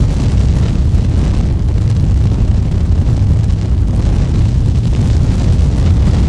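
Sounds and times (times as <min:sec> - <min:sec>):
fire burning outdoors: 0:00.0 - 0:06.2.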